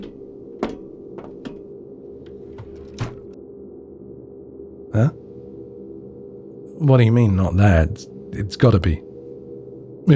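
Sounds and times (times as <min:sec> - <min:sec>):
drawer opening with wooden clunks and light rattles: 0:00.0 - 0:03.4
speech: 0:05.0 - 0:05.2, 0:06.8 - 0:09.1.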